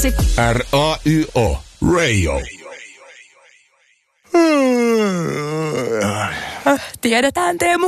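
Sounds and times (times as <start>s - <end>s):
speech: 0.0s - 2.6s, 6.6s - 7.8s
person yawning: 4.3s - 6.7s.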